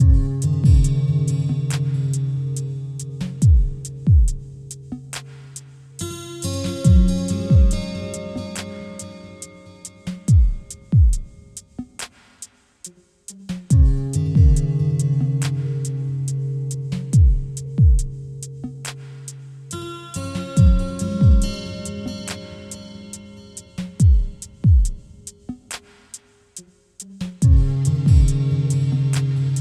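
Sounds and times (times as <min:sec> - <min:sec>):
chill funk music tuned to 432 Hz: 0:00.0 - 0:12.1, 0:13.4 - 0:26.0, 0:27.2 - 0:29.5.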